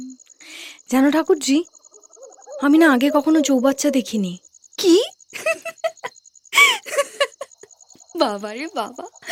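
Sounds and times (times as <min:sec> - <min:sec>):
speech: 0:00.9 - 0:01.8, 0:02.6 - 0:05.1, 0:08.2 - 0:09.2
owl hooting: 0:01.9 - 0:04.3.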